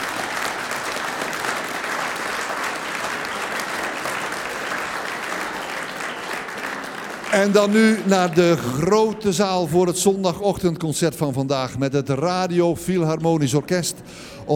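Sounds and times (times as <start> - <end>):
applause for a large radio choir after a concert performance: 0.0 - 9.2
speech: 7.3 - 14.5.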